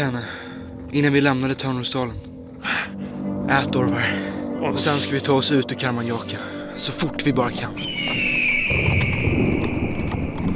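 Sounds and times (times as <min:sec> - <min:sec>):
speech: 0:00.0 - 0:08.9
sustained high whistling tone: 0:06.5 - 0:10.5
ridden horses' hooves clip-clopping: 0:07.0 - 0:10.5.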